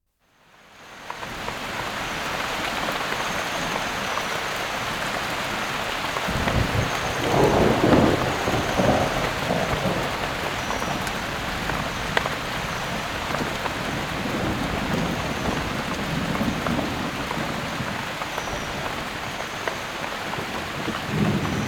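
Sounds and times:
heavy downpour: 0.4s - 21.6s
thunder: 6.3s - 19.3s, 20.4s - 21.6s.

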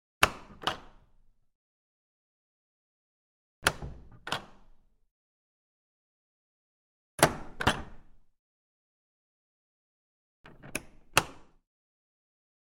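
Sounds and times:
small wooden door with latch: 0.2s - 1.3s, 3.6s - 5.0s, 7.2s - 8.3s, 10.5s - 11.6s.

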